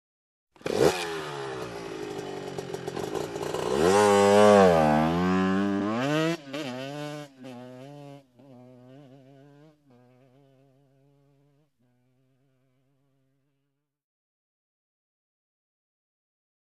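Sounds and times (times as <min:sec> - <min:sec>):
motorcycle driving away: 0:00.6 - 0:13.6.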